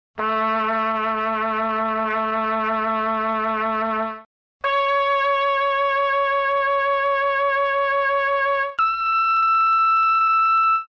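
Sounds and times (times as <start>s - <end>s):
trumpet: 0.2s - 10.8s.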